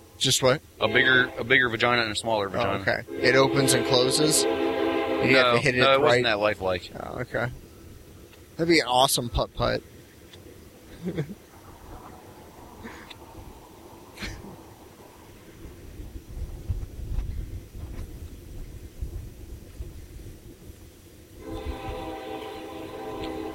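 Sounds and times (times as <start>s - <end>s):
train rumbling past: 0.0s - 8.7s, 11.4s - 23.5s
speech: 0.2s - 7.6s, 8.6s - 9.9s, 11.0s - 11.4s
train horn blast: 0.8s - 6.4s, 21.4s - 23.5s.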